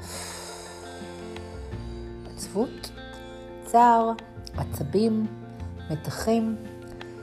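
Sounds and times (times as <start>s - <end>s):
long steady exhale of breath: 0.0s - 1.3s
speech: 2.5s - 3.0s, 3.7s - 6.7s.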